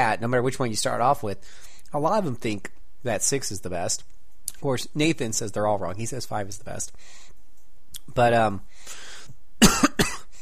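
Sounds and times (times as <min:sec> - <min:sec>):
speech: 0:00.0 - 0:07.3, 0:08.1 - 0:09.0
person coughing harshly: 0:09.6 - 0:10.4.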